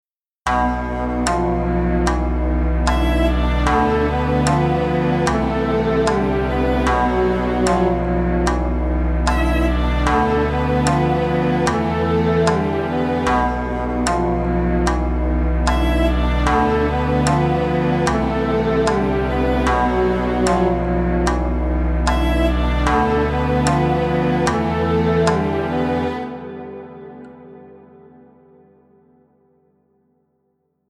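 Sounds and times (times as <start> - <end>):
Japanese-style melody: 0.5 - 29.3.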